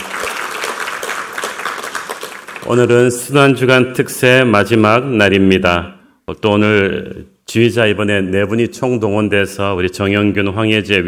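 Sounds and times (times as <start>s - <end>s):
congregation applauding: 0.0s - 3.0s
speech: 2.7s - 11.0s.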